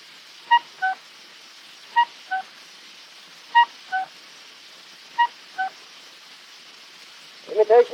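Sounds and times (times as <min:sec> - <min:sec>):
faint hiss: 0:00.0 - 0:07.9
imitated two-note cuckoo call: 0:00.5 - 0:01.0, 0:02.0 - 0:02.5, 0:03.5 - 0:04.1, 0:05.2 - 0:05.8
speech: 0:07.7 - 0:07.9.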